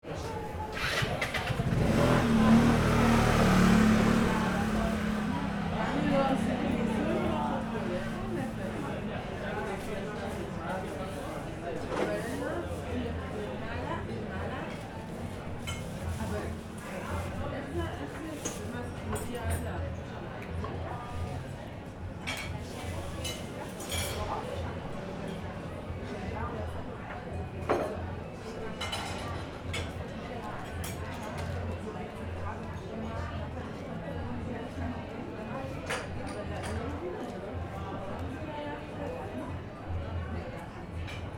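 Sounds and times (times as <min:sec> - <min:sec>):
outdoor bar cafe ambience at night: 0:00.0 - 0:41.3.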